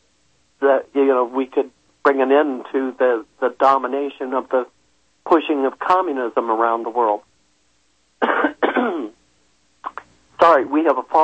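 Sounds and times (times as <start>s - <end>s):
speech: 0.6s - 7.3s, 10.4s - 11.2s
man coughing: 8.2s - 9.2s.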